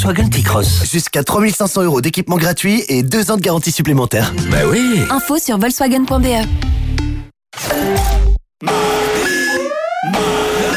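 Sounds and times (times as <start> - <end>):
speech: 0.0 - 7.0, 7.6 - 9.4
electronic alarm beeping: 8.7 - 10.7.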